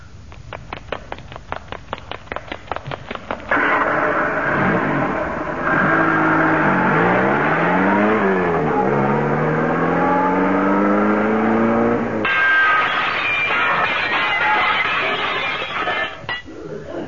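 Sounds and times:
running footsteps at a Le Mans start: 0:00.0 - 0:03.5
racing car engines roaring and revving: 0:03.5 - 0:15.2.

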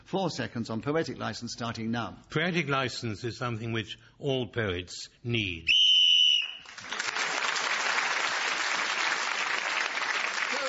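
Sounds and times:
speech: 0:00.1 - 0:05.8
shrill whistle blast to end the round: 0:05.7 - 0:06.7
audience applause: 0:06.6 - 0:10.6.

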